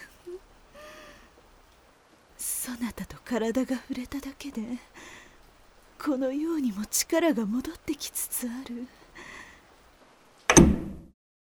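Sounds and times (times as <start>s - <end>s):
speech: 2.7s - 5.2s, 6.0s - 9.0s
door closing: 10.5s - 11.0s.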